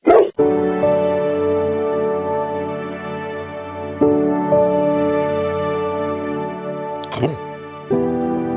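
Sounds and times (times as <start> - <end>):
calm slow instrumental music made for dogs with sustained notes and drone: 0.4 - 8.5.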